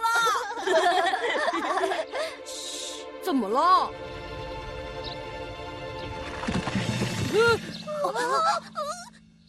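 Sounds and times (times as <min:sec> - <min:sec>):
laughter: 0:00.2 - 0:02.3, 0:07.9 - 0:09.1
speech: 0:03.3 - 0:04.1
rocks rumbling and crashing down a mountainside: 0:06.1 - 0:07.9.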